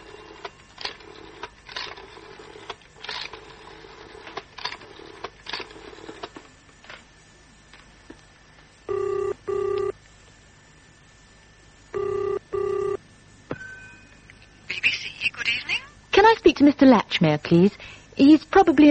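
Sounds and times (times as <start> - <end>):
telephone double-burst ring tones heard through the earpiece: 8.9 - 10.0, 11.9 - 15.0
speech: 16.6 - 18.8.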